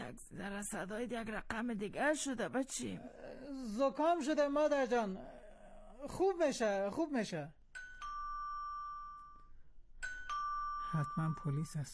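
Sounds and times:
speech: 0:00.1 - 0:05.4, 0:06.0 - 0:07.6, 0:10.9 - 0:11.9
doorbell chiming: 0:07.8 - 0:11.9.

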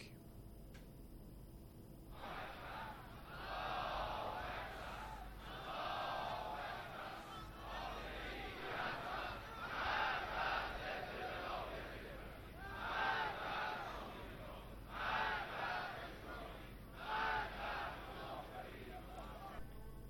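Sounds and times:
large outdoor crowd of protesters roaring: 0:02.1 - 0:19.6.

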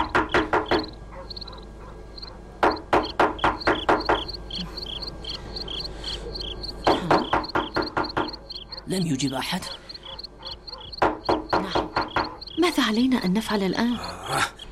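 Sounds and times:
firm rapid knocking on the door of a house: 0:00.0 - 0:01.0, 0:02.6 - 0:04.4, 0:06.8 - 0:08.4, 0:10.8 - 0:12.6
crickets chirping: 0:00.0 - 0:14.7
speech: 0:08.9 - 0:09.9, 0:12.8 - 0:14.5.

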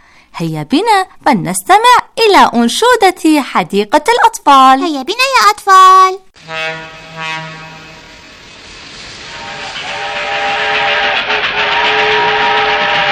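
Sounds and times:
speech: 0:00.4 - 0:07.5
fast train whistle-like tone: 0:06.4 - 0:13.1.

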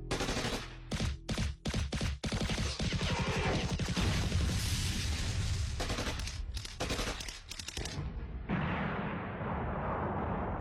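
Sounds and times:
machine-gun bursts: 0:00.1 - 0:04.4, 0:05.8 - 0:08.0
artillery explosions: 0:00.1 - 0:07.2, 0:07.8 - 0:10.5.

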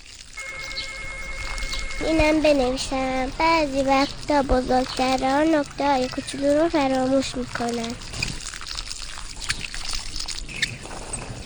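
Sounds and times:
constant hiss: 0:00.0 - 0:11.4
electronic telephone ringing: 0:00.4 - 0:03.3
speech: 0:02.0 - 0:08.1.

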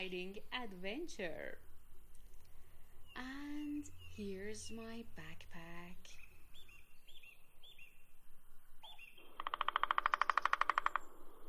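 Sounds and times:
speech: 0:00.0 - 0:01.7, 0:03.2 - 0:06.2
quiet bird calls: 0:01.6 - 0:11.4
bird with fast loud rattling trill of rapid chirps: 0:08.8 - 0:11.1.

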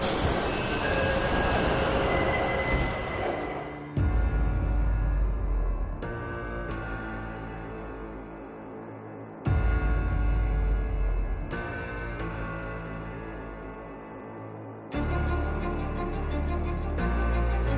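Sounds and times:
subway train arriving at station: 0:00.0 - 0:10.0, 0:12.2 - 0:17.7
high metallic whining from subway train wheels: 0:00.0 - 0:17.7.

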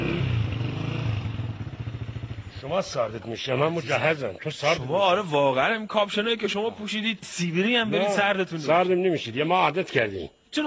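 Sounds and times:
motorcycle engine idling and being switched off: 0:00.0 - 0:04.7
speech: 0:02.6 - 0:10.6.

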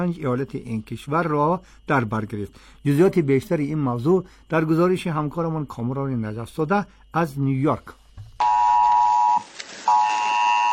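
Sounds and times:
speech: 0:00.0 - 0:08.0
mobile phone emergency alert tone warning of storms: 0:08.4 - 0:10.7.

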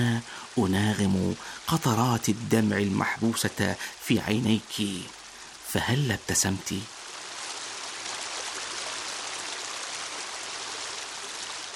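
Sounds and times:
speech: 0:00.0 - 0:07.0
heavy rain falling: 0:00.0 - 0:11.7.

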